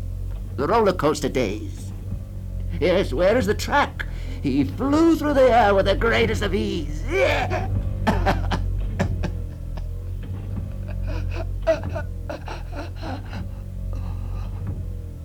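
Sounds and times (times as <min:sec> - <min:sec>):
steady low hum: 0:00.0 - 0:15.2
speech: 0:00.6 - 0:01.8, 0:02.8 - 0:08.2
laughter: 0:02.7 - 0:14.8
man breathing fitfully: 0:04.0 - 0:04.5, 0:09.2 - 0:15.2.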